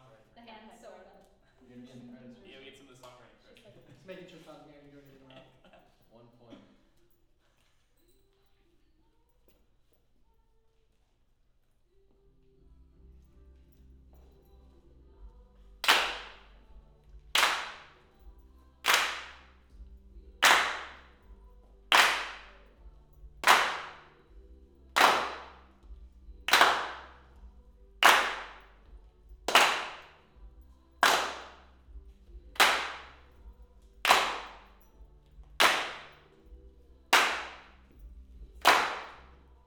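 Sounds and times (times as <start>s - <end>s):
hand claps: 15.8s - 16.6s, 17.2s - 21.3s, 21.9s - 22.8s, 23.4s - 31.8s, 32.5s - 39.4s.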